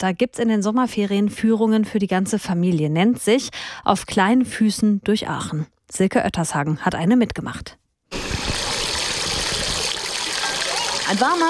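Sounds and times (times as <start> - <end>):
speech: 0.0 - 7.8, 11.1 - 11.4
small water fountain jets rising from the ground splashing: 8.1 - 11.4.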